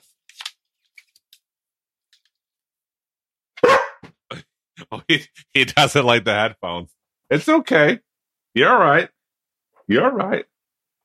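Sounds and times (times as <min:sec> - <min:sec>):
dog barking: 0:03.6 - 0:04.1
speech: 0:05.0 - 0:09.2, 0:09.9 - 0:10.5.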